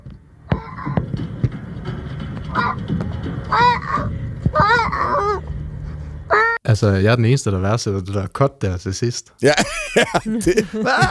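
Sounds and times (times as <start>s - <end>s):
spotted-looking seal pup giving nasal bleating cries: 0.5s - 1.1s, 3.5s - 5.4s, 6.3s - 6.6s
speech: 6.7s - 11.0s
laughter: 9.4s - 11.0s.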